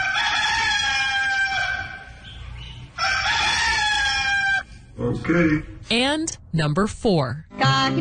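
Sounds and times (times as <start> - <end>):
rooster crowing: 0.0 - 2.2, 3.0 - 4.8
speech: 5.0 - 7.9.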